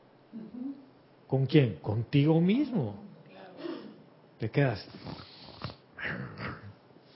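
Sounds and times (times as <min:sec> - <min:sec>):
speech: 0:01.3 - 0:03.1, 0:04.4 - 0:05.3
person's voice growling like a little dog: 0:06.0 - 0:06.8.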